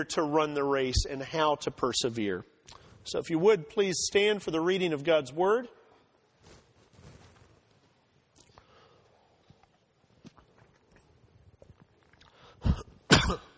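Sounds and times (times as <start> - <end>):
speech: 0.0 - 5.8
faint rustling and small movement noises: 6.2 - 12.4
person coughing and choking on water at a church service: 12.6 - 13.5.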